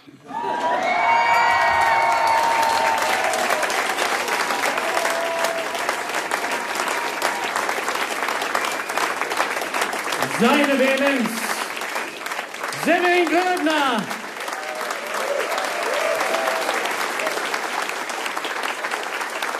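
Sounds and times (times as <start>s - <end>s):
live audience applause: 0.0s - 19.5s
audience cheers and whoops: 0.3s - 7.6s, 14.4s - 17.4s
speech: 10.4s - 11.5s, 12.9s - 14.2s.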